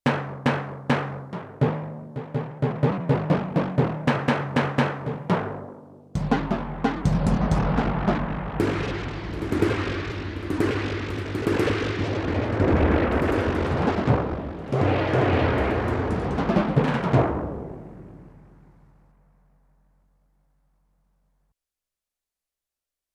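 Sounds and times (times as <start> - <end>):
sampled timpani: 0.1 - 19.6
sampled gong: 6.2 - 17.9.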